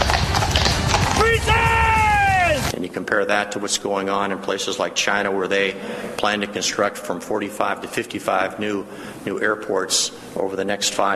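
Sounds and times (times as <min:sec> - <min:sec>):
hooves of cavalry and carriage horses on a hard surface at a royal rehearsal: 0:00.0 - 0:02.7
high tonal cry: 0:01.2 - 0:02.7
speech: 0:03.0 - 0:11.1.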